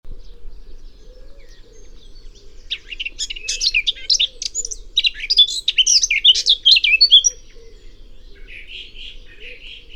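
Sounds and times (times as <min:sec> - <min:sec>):
Eurasian blackcap singing: 0:01.4 - 0:07.4.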